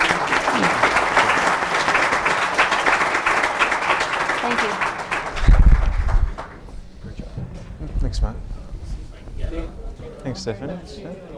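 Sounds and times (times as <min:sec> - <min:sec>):
room full of people applauding: 0:00.0 - 0:06.7
speech: 0:10.4 - 0:11.3.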